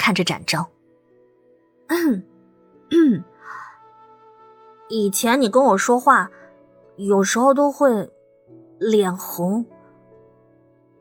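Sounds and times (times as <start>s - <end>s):
speech: 0.0s - 0.8s, 1.9s - 2.3s, 2.9s - 3.6s, 4.9s - 6.4s, 7.0s - 8.2s, 8.8s - 9.7s
person clearing throat: 2.9s - 3.3s.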